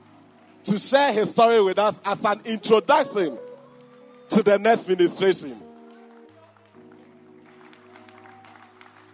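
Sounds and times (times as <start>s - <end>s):
light scattered audience clapping: 0.0s - 9.1s
speech: 0.7s - 3.5s, 4.4s - 5.6s
sustained organ or keyboard chords: 0.7s - 6.2s.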